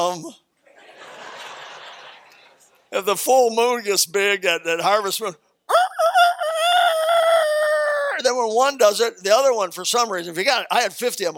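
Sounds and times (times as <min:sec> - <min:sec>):
speech: 0:00.0 - 0:00.4, 0:02.9 - 0:05.4, 0:08.2 - 0:11.3
laughter: 0:00.7 - 0:02.7
person imitating a rooster crowing: 0:05.7 - 0:08.2.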